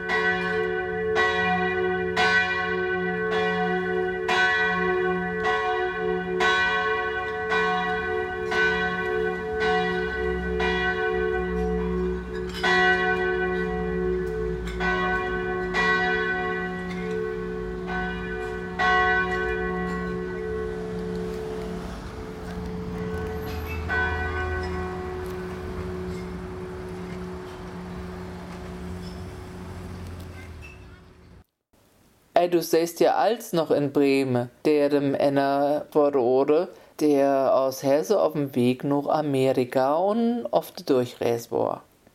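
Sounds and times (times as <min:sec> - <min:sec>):
church bells ringing in a steady peal: 0:00.0 - 0:30.6
speech: 0:32.4 - 0:41.9.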